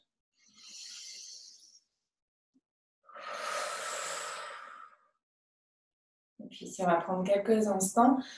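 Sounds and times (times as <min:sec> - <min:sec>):
deep inhale through the nose and exhale through the mouth: 0:00.4 - 0:01.9, 0:03.1 - 0:05.2
speech: 0:06.5 - 0:08.3.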